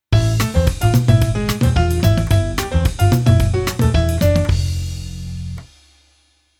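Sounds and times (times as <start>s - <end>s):
Latin piano keyboard: 0.1s - 4.9s.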